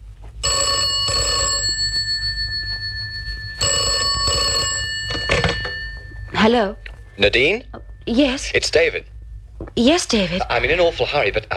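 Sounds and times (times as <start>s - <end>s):
low steady rumble: 0.0s - 11.5s
telephone bell ringing: 0.4s - 7.6s
speech: 6.4s - 9.1s, 9.8s - 11.5s.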